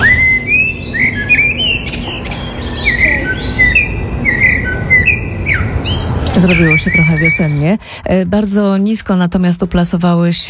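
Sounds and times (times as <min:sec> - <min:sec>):
common blackbird singing fluty whistled phrases: 0:00.0 - 0:07.8
other birds chirping softly: 0:00.0 - 0:07.8
low outdoor rumble: 0:00.0 - 0:10.4
speech: 0:06.4 - 0:10.4.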